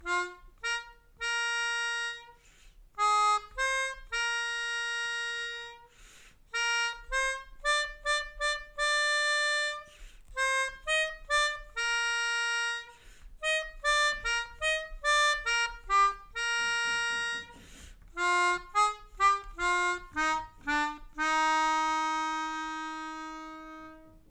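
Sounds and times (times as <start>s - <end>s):
melodica melody: 0.0s - 24.2s.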